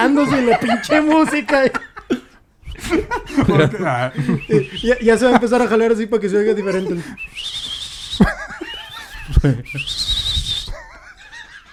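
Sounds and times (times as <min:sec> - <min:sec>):
laughter: 0:00.0 - 0:07.3, 0:08.2 - 0:09.9, 0:10.6 - 0:11.7
speech: 0:00.1 - 0:02.2, 0:02.8 - 0:07.6, 0:09.4 - 0:10.1
loud piercing human whistle: 0:04.3 - 0:05.0, 0:07.0 - 0:10.8.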